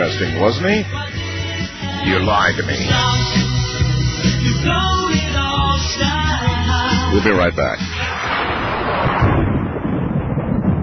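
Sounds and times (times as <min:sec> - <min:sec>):
speech: 0:00.1 - 0:08.2
thunder rumbling: 0:07.8 - 0:10.8.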